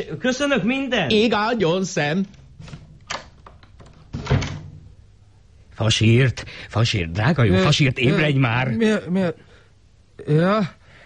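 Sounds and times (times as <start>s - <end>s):
speech: 0.0s - 2.8s, 5.8s - 9.5s, 10.2s - 10.8s
door closing by itself: 4.1s - 4.9s.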